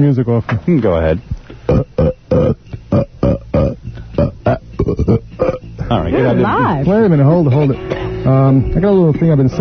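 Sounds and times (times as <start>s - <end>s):
speech: 0.0s - 3.4s, 5.0s - 9.5s
loud croaking burps: 1.7s - 6.4s.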